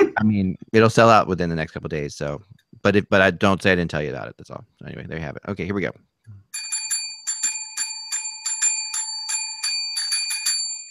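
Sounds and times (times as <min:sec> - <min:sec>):
speech: 0:00.2 - 0:06.1
bright metallic bell ringing in quick repeated bursts: 0:06.6 - 0:10.8.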